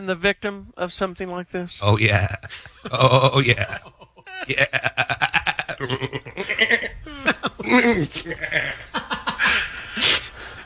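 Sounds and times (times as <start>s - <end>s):
speech: 0.0s - 10.2s
man in a studio imitating goat bleats: 1.8s - 5.0s
laughter: 1.8s - 10.6s.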